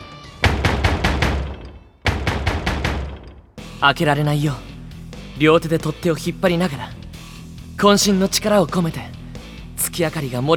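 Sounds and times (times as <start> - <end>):
violent rapid pounding on a toilet door: 0.4 - 3.6
speech: 3.8 - 4.7, 5.4 - 7.0, 7.8 - 9.2, 10.0 - 10.5.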